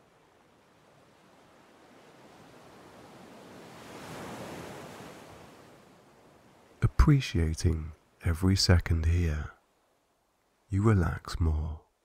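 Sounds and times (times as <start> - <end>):
ocean waves rolling onto a sandy shore: 0.0 - 8.3
speech: 7.0 - 9.6, 10.7 - 11.8.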